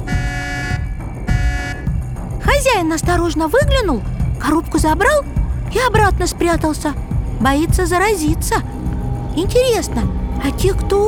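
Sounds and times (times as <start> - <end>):
car horn honks: 0.0 - 2.0
low continuous car engine rumble: 0.0 - 11.0
speech: 2.8 - 8.8, 9.4 - 11.0.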